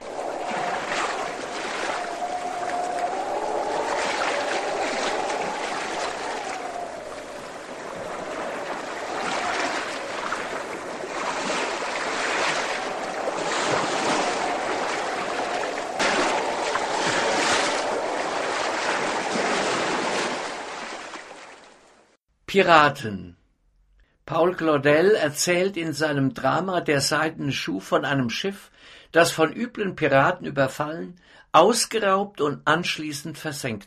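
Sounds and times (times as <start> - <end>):
wind rushing: 0.0 - 21.4
heavy ocean surf with waves surging and crashing: 0.0 - 22.2
speech: 22.6 - 23.4, 24.3 - 33.8.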